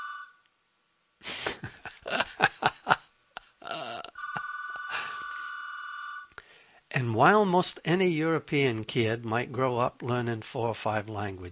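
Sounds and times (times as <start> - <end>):
electronic telephone ring: 0.0 - 0.4, 4.1 - 6.3
laughter: 1.3 - 5.4
speech: 7.1 - 11.5.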